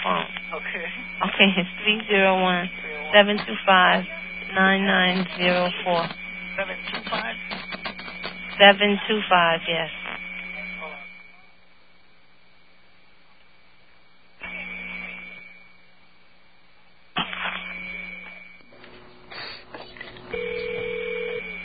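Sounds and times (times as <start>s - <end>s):
telephone line hiss: 0.0s - 11.4s, 17.2s - 21.6s
speech: 1.4s - 7.5s, 8.6s - 10.0s
telephone ringback tone on a payphone call through an operator: 20.3s - 21.6s.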